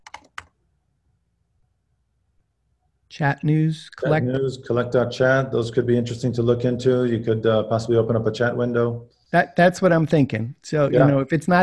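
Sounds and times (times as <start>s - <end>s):
typing on a computer keyboard: 0.0s - 0.5s
speech: 3.1s - 11.6s.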